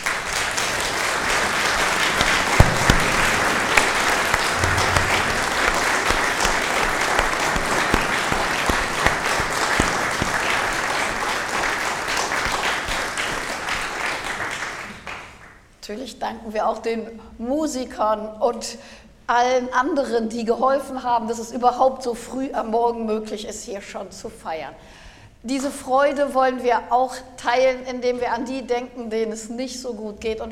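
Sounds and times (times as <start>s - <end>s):
sustained applause from a large audience: 0.0s - 15.4s
speech: 16.2s - 30.4s.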